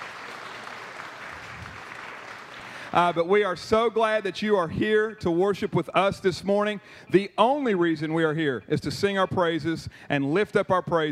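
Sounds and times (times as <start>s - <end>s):
large church audience applauding at a morning worship service: 0.0s - 3.0s
speech: 2.9s - 11.1s.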